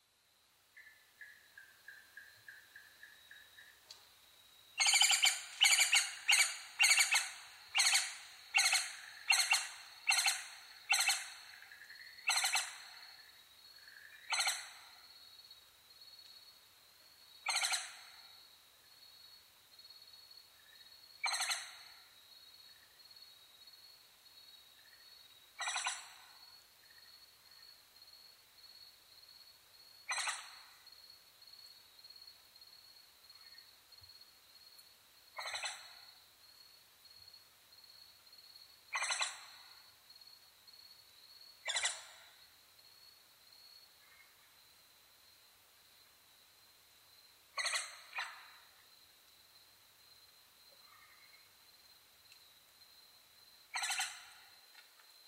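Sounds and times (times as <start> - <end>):
Japanese giant flying squirrel calling: 4.8 - 11.5, 12.2 - 12.8, 25.6 - 26.0, 35.4 - 35.8, 38.9 - 39.4, 53.7 - 54.2
Schlegel's green tree frog calling: 4.8 - 15.1, 17.4 - 18.4, 21.2 - 22.0, 25.6 - 26.5, 30.0 - 30.8, 35.4 - 36.1, 38.9 - 39.8, 41.6 - 42.4, 47.5 - 48.7, 53.7 - 54.6.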